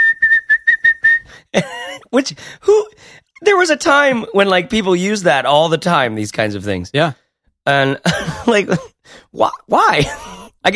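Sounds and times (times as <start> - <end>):
person whistling high note mimicking a sampling keyboard whistle sound: 0.0 - 1.4
speech: 1.5 - 10.7.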